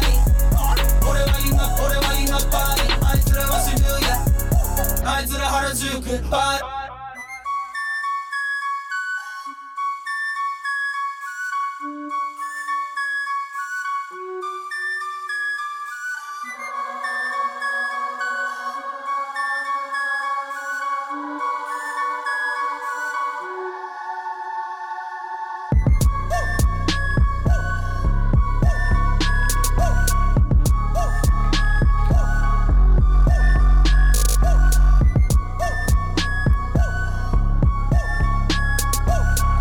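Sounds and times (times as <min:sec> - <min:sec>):
punchy electronic rap beat with thumping bass and crisp percussion: 0:00.0 - 0:05.2, 0:25.7 - 0:27.7, 0:28.4 - 0:39.5
breathy flute melody: 0:00.0 - 0:05.7, 0:06.4 - 0:39.5.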